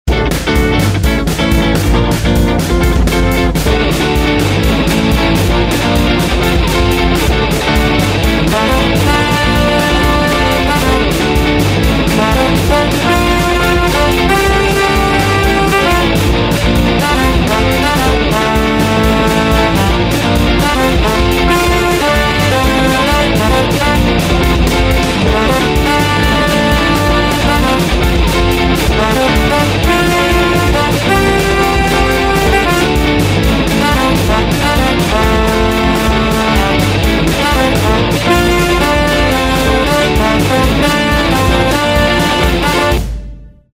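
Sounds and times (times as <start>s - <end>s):
ska music: 0.0s - 43.7s.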